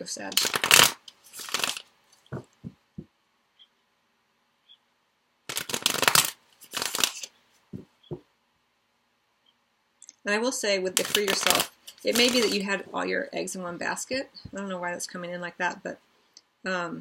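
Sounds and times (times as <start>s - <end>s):
speech: 0.0s - 1.0s, 10.3s - 16.9s
deck of tarot cards being shuffled: 0.3s - 3.1s, 5.5s - 8.2s, 10.9s - 12.7s.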